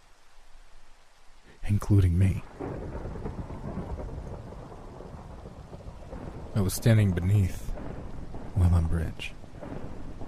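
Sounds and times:
steady rainfall: 0:00.0 - 0:10.2
speech: 0:01.7 - 0:03.3, 0:06.6 - 0:07.7, 0:08.6 - 0:09.4
low continuous thunder rumbling: 0:02.3 - 0:10.2.

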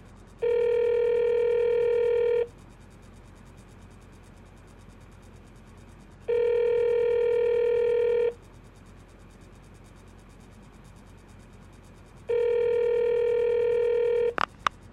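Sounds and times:
telephone line ringing with long steady buzzing tones: 0:00.4 - 0:02.5, 0:06.3 - 0:08.4, 0:12.3 - 0:14.4.

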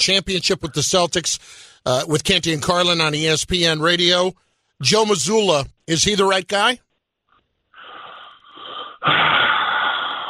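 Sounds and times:
speech: 0:00.0 - 0:06.8, 0:09.0 - 0:09.5
man drawing a deep wheezy breath: 0:01.4 - 0:01.8, 0:07.8 - 0:10.2.

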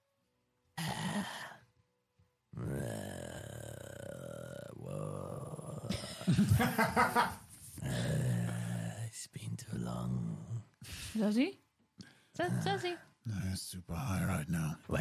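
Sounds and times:
guttural howling voice growling and rasping in an invented language: 0:00.8 - 0:01.6, 0:02.6 - 0:06.0, 0:07.8 - 0:09.2, 0:09.8 - 0:10.7, 0:12.4 - 0:13.0
laughter: 0:05.9 - 0:07.4
speech: 0:06.3 - 0:08.3, 0:11.2 - 0:11.6, 0:12.4 - 0:14.9.

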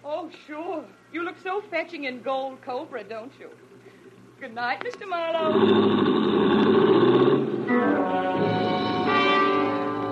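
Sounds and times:
speech: 0:01.2 - 0:03.7, 0:04.4 - 0:06.4
car engine revving and roaring off down an alley: 0:05.4 - 0:10.0.

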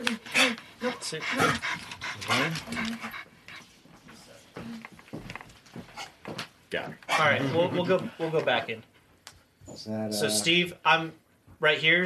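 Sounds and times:
dog panting: 0:00.0 - 0:06.4, 0:07.0 - 0:09.2
speech: 0:01.0 - 0:03.3, 0:06.7 - 0:08.9, 0:09.8 - 0:12.0.

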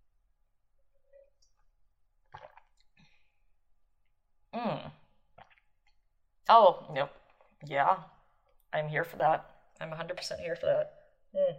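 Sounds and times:
Chardonnay wine being sipped and tasted with slurps: 0:02.3 - 0:03.0
speech: 0:06.5 - 0:08.1, 0:08.7 - 0:11.5.

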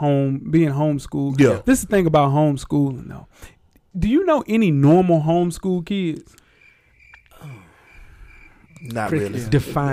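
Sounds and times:
speech: 0:00.0 - 0:06.4, 0:08.8 - 0:09.9
high-pitched cricket chirping: 0:06.4 - 0:09.9.

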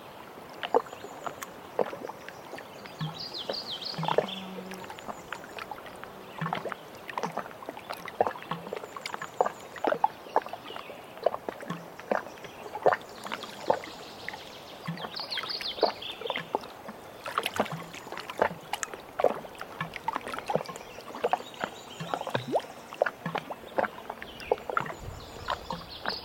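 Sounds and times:
canoe paddle strokes knocking and splashing on open water: 0:00.6 - 0:26.2.

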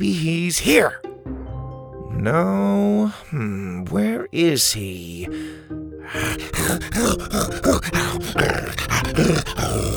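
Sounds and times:
speech: 0:00.0 - 0:01.0, 0:02.2 - 0:09.9
dog growling in excited playful bursts: 0:06.2 - 0:09.9.

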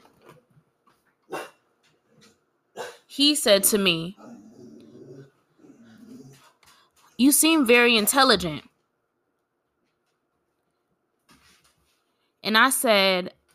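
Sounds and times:
dog barking and growling: 0:01.3 - 0:01.7, 0:02.7 - 0:03.1, 0:04.1 - 0:06.6
speech: 0:03.2 - 0:04.2, 0:07.2 - 0:08.7, 0:12.5 - 0:13.4.

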